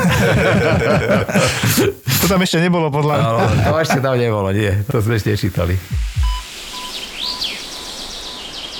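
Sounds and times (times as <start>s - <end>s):
laughter: 0.0s - 2.4s, 3.1s - 4.3s
steady airy hiss in a forest: 0.0s - 8.7s
speech: 0.2s - 6.4s
low thumps: 5.8s - 6.5s
bird chirps and whistles: 6.2s - 8.7s.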